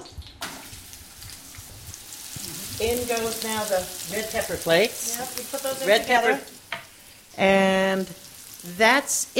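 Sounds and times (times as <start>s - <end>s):
sliced onions sizzling in hot pan: 0.4s - 9.3s
speech: 2.8s - 6.6s, 7.4s - 9.3s.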